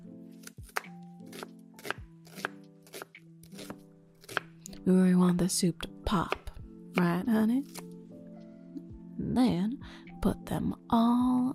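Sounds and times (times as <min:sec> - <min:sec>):
knife chopping onion and garlic: 0:00.4 - 0:04.5, 0:06.2 - 0:07.9
speech: 0:04.9 - 0:06.4, 0:07.0 - 0:07.8, 0:09.3 - 0:11.5.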